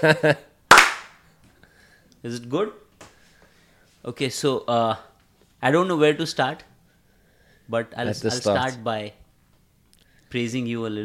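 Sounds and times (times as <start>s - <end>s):
speech: 0.0s - 0.5s, 2.2s - 2.8s, 4.0s - 6.7s, 7.7s - 9.2s, 10.3s - 11.0s
single sharp loud hand clap: 0.7s - 1.2s.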